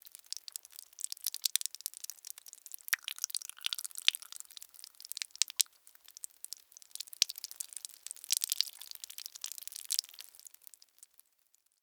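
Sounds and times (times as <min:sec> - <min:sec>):
blood dripping: 0:00.1 - 0:11.1.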